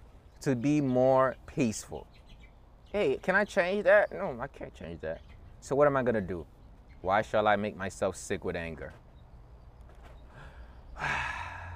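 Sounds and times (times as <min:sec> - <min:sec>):
speech: 0:00.4 - 0:02.2, 0:02.9 - 0:09.0, 0:11.0 - 0:11.2
man taking a deep breath: 0:10.3 - 0:11.7.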